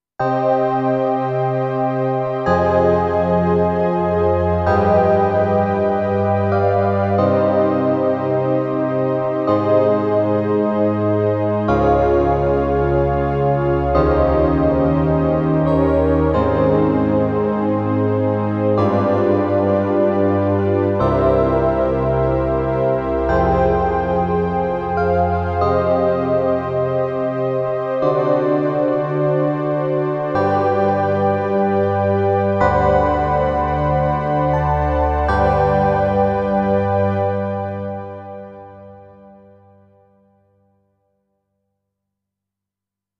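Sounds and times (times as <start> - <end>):
analog electric piano on a digital piano: 0.2 - 39.6.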